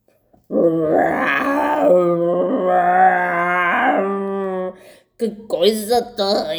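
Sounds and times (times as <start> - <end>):
bear growling: 0.5 - 4.8
speech: 0.6 - 2.1, 5.2 - 6.5.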